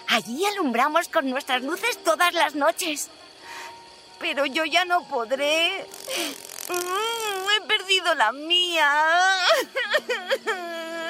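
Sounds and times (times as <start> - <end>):
speech: 0.2 - 3.3, 4.2 - 10.9
performer whimpering and crying as a firefly character: 6.0 - 7.5, 9.2 - 11.0.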